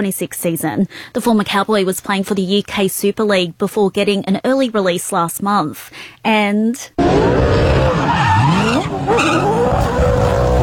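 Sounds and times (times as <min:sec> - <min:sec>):
speech: 0:00.0 - 0:10.4
Supercars race car engine roar: 0:07.0 - 0:10.6
race car tire squeal in a victory celebration skid: 0:07.0 - 0:10.6.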